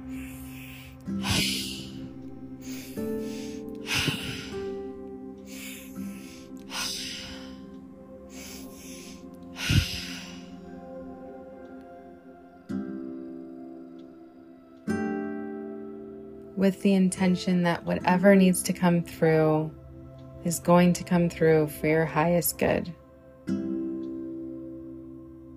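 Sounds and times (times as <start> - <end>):
breathing in through the nose and out through the mouth: 0.0 - 11.0
soft sustained musical drone: 0.0 - 25.5
speech: 16.6 - 19.8, 20.4 - 23.0.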